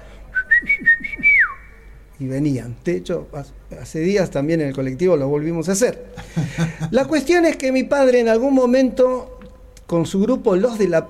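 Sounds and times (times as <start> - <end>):
person whistling to call children: 0.3 - 1.9
speech: 2.2 - 9.3, 9.9 - 11.0
laughter: 6.2 - 7.1.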